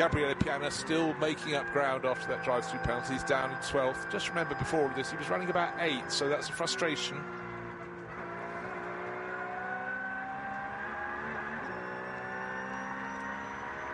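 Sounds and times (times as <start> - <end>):
speech: 0.0 - 7.4
Porsche race car engine on board during a race: 0.0 - 13.9.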